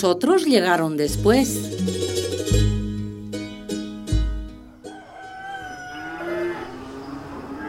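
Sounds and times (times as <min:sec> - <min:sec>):
speech: 0:00.0 - 0:02.6
other farmyard animal sounds: 0:04.6 - 0:07.6
rooster crowing: 0:04.7 - 0:07.6
cows mooing: 0:04.9 - 0:07.6.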